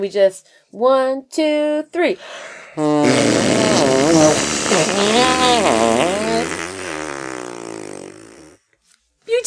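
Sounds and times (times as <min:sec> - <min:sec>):
speech: 0:00.0 - 0:06.6
raspberry blown with the lips imitating a fart: 0:02.7 - 0:08.6.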